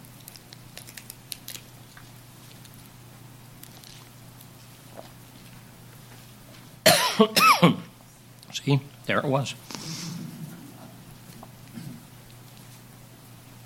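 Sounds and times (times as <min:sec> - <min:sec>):
low steady hum: 0:00.0 - 0:13.6
person coughing harshly: 0:06.8 - 0:07.9, 0:11.7 - 0:12.0
speech: 0:07.2 - 0:07.8, 0:08.6 - 0:09.8.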